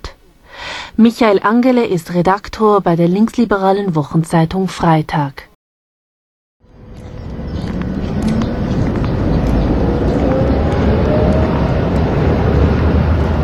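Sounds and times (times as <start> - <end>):
speech: 1.0 - 5.5
city traffic rumble on a street in the former East Germany: 6.6 - 13.4.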